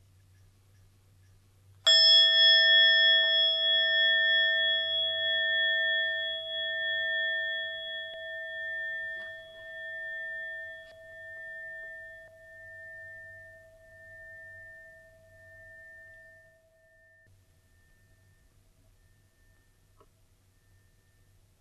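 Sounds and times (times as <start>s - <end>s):
gong or meditation bell ringing: 1.9s - 17.3s.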